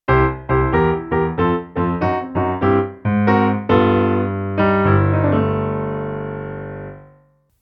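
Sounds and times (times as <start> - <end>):
blues introduction in the key of C: 0.1 - 7.0.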